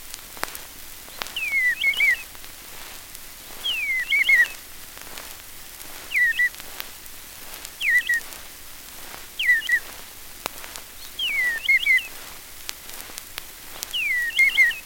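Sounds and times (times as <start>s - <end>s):
faint hiss: 0.0s - 14.8s
bluebird song: 1.0s - 2.3s, 3.5s - 4.6s, 5.9s - 6.7s, 7.5s - 8.4s, 9.3s - 9.9s, 10.6s - 12.3s, 13.8s - 14.8s.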